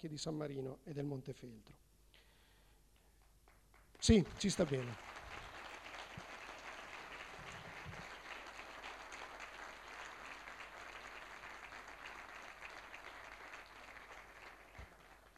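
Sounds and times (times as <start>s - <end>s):
speech: 0.0s - 1.8s, 4.0s - 5.2s
audience applause in a theatre: 4.0s - 15.3s.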